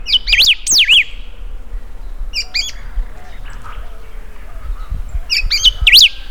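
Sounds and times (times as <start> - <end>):
Saltator aurantiirostris: 0.0 - 6.2.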